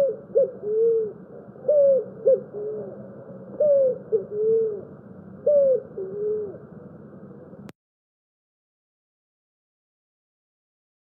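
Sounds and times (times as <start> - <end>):
Picazuro pigeon cooing song: 0.0 - 7.5.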